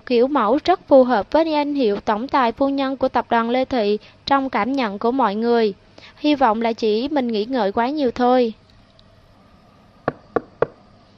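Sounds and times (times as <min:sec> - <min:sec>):
speech: 0:00.1 - 0:08.6
knocking on an office door: 0:10.0 - 0:10.8.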